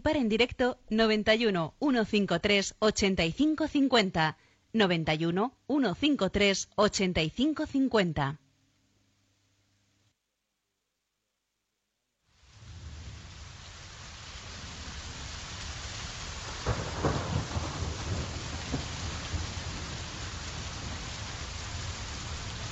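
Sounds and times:
speech: 0.0 - 8.4
torrential rain in a thunderstorm: 12.2 - 22.6
thunder rumbling: 12.4 - 22.6.

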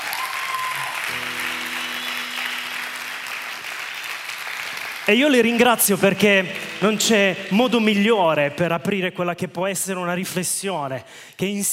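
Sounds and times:
audience applauding a band at a talk evening: 0.0 - 8.1
speech: 5.1 - 11.7.

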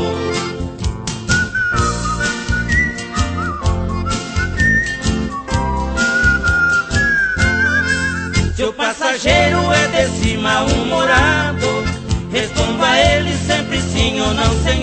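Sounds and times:
full instrumental band accompaniment: 0.0 - 8.6, 9.3 - 14.8
person whistling a flowing melody: 1.3 - 8.6.

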